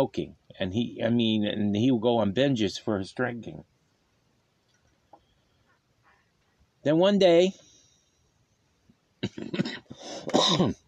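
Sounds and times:
speech: 0.0s - 3.7s, 6.8s - 7.7s, 9.2s - 10.8s
person clearing throat: 9.2s - 10.8s
person coughing: 9.2s - 10.8s.

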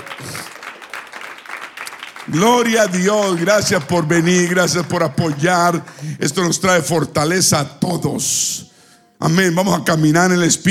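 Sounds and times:
audience applauding: 0.0s - 6.6s
speech: 2.3s - 10.6s.

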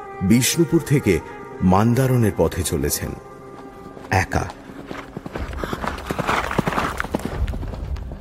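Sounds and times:
speech: 0.2s - 3.3s, 4.1s - 5.0s
hoofbeats of a horse carrying a lone rider along a road: 3.3s - 8.1s.

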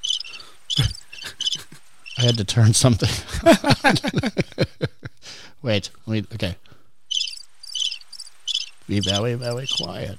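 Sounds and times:
crickets chirping in high-pitched trills: 0.0s - 2.5s, 7.1s - 10.1s
speech: 0.8s - 1.0s, 2.2s - 4.8s, 5.6s - 6.7s, 8.9s - 10.1s
laughter: 0.8s - 5.2s.

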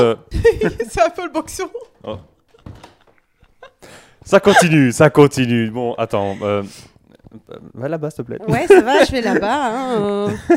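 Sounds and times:
speech: 0.0s - 2.3s, 4.3s - 10.5s
laughter: 2.1s - 4.9s, 8.5s - 10.5s
door leading to a veranda opening: 2.6s - 3.3s.

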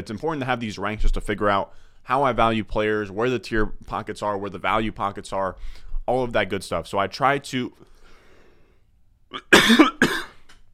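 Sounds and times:
speech: 0.0s - 7.9s, 9.3s - 10.0s
harsh coughs from someone with something caught in the throat: 9.3s - 10.5s
throat clearing from someone with something caught in the throat: 9.3s - 10.5s.

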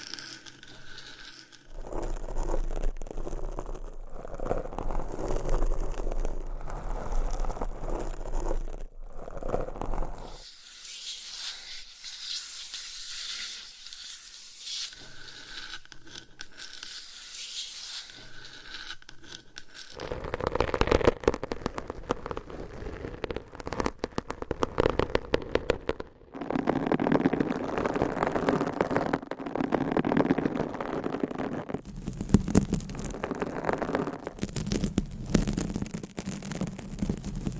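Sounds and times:
scratching and rubbing against a microphone with different covers: 0.0s - 10.4s, 19.3s - 37.5s.

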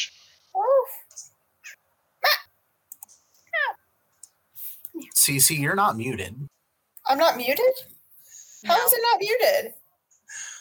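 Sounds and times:
computer mouse clicks: 2.9s - 3.3s
speech: 5.3s - 7.9s, 8.6s - 9.8s.

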